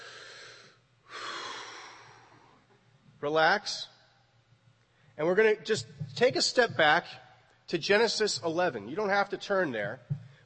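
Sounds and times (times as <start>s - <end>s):
deep breath: 0.0s - 2.7s
speech: 3.2s - 3.9s, 5.2s - 10.4s.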